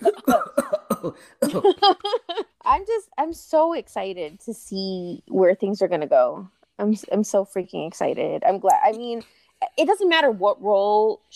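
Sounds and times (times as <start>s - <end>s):
person fake coughing: 0.0s - 2.4s
speech: 3.6s - 11.3s.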